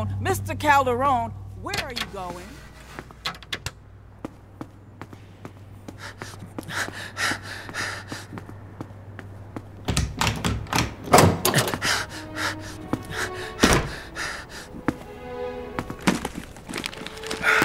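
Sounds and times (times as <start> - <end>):
low steady hum: 0.0 - 17.6
speech: 0.2 - 2.6
breathy sounds: 5.9 - 9.0, 11.5 - 17.6
wooden clunks, rattles and knocks: 9.8 - 11.9
pull door being wrestled open: 9.9 - 12.0, 13.5 - 14.1.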